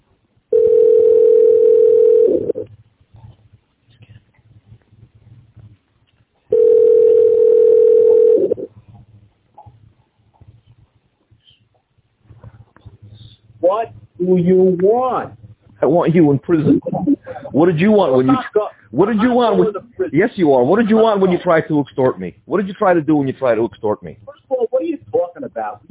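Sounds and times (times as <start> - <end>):
telephone ringback tone while a call to an office line is transferred: 0.5 - 2.6, 6.5 - 8.7
speech: 13.8 - 24.4, 25.6 - 25.9.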